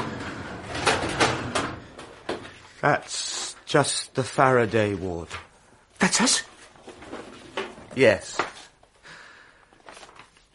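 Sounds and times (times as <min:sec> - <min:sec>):
drawer sliding open: 0:00.0 - 0:02.6, 0:06.8 - 0:08.3
speech: 0:02.8 - 0:05.4, 0:06.0 - 0:06.5, 0:08.0 - 0:08.4.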